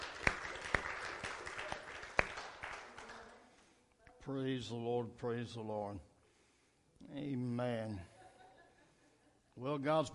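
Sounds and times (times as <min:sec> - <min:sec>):
sharp louder hand claps: 0:00.0 - 0:03.4
crowd applauding in a room: 0:00.0 - 0:03.5
speech: 0:04.3 - 0:06.1, 0:07.1 - 0:08.1, 0:09.6 - 0:10.1.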